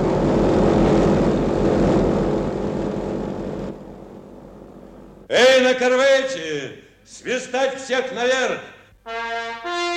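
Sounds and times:
propeller airplane engine roaring as the plane takes off: 0.0 - 5.2
speech: 5.3 - 9.8.

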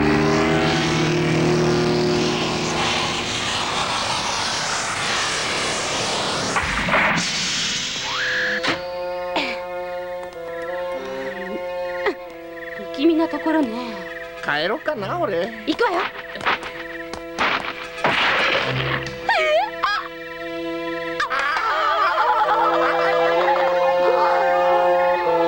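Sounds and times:
aircraft engine roar while landing: 0.0 - 25.4
speech: 14.5 - 16.5
laughter: 19.2 - 20.1, 21.2 - 25.4.

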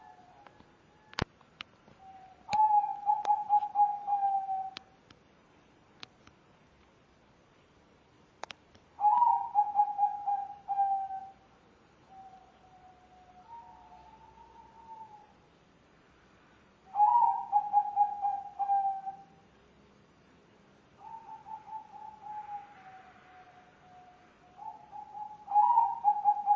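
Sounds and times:
spotted dove cooing: 2.0 - 4.8, 9.0 - 11.4, 12.1 - 15.4, 16.9 - 19.4, 21.0 - 26.5.

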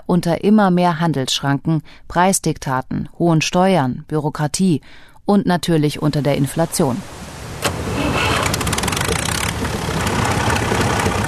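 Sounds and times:
speech: 0.1 - 7.8
farm tractor engine rumbling on a rural Argentine road: 6.2 - 11.2.

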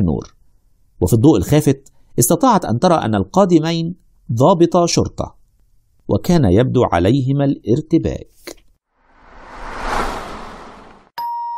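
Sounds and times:
speech: 0.0 - 0.4, 1.0 - 5.4, 6.1 - 8.4
airy whoosh: 9.0 - 11.2
doorbell ding: 11.2 - 11.5.

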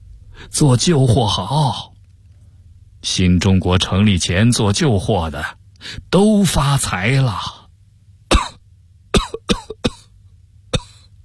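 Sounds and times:
speech: 0.5 - 1.9, 3.0 - 7.6
man's violent coughing fit: 8.3 - 11.1.

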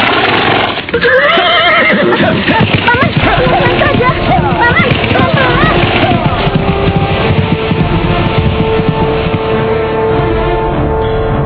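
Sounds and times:
rough noisy background: 0.0 - 10.4
speech: 0.9 - 2.5
horse neighing: 0.9 - 8.1.

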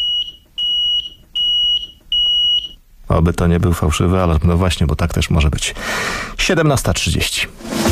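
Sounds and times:
carbon monoxide detector alarm beeping: 0.0 - 2.9
speech: 3.1 - 7.8.

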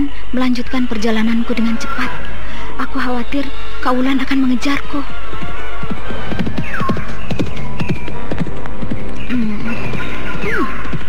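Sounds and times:
speech: 0.0 - 5.2
constant low hum: 0.0 - 11.0
horse hooves clopping: 4.2 - 11.0.

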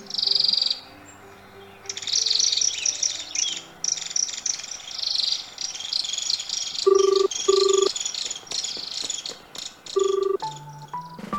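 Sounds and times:
green and red feathered birds calling in high-pitched chirping chatter: 0.0 - 11.2.

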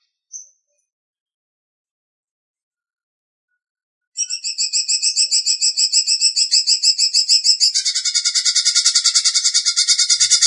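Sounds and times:
leafbird song: 0.0 - 0.9, 4.2 - 10.4.

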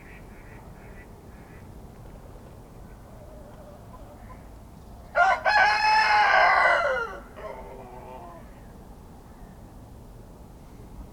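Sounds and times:
rooster crowing in a pen at a small farmhouse in Kawcze Poland: 5.2 - 7.9.

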